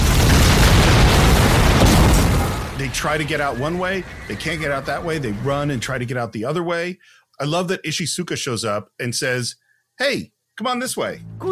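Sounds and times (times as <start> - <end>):
loud continuous explosions rumbling: 0.0 - 5.8
speech: 3.0 - 11.5.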